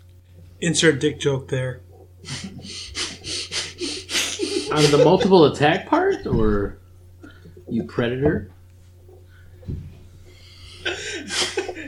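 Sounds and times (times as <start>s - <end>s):
speech: 0.6s - 3.0s, 4.7s - 6.8s, 7.7s - 8.6s
heavy rasping breathing: 2.2s - 5.2s, 9.2s - 11.8s
laughter: 2.2s - 6.6s, 10.7s - 11.8s.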